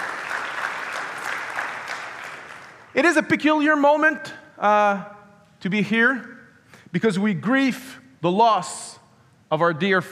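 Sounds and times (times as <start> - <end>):
large audience applauding: 0.0 - 3.0
speech: 3.0 - 6.3, 6.9 - 8.9, 9.5 - 10.1.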